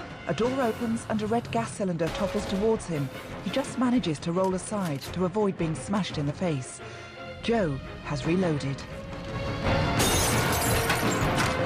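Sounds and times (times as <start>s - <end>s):
speech: 0.3s - 9.0s
werewolf's claw smashing through a boarded-up window: 10.0s - 11.4s.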